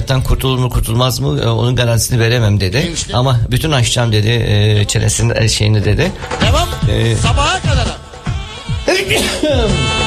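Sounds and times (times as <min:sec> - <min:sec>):
speech: 0:00.1 - 0:08.0, 0:09.0 - 0:10.0
person sneezing: 0:08.9 - 0:09.8.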